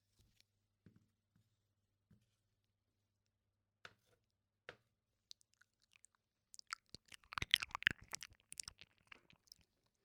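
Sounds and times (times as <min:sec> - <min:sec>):
crunching and biting while eating homemade crab: 0:05.3 - 0:09.8.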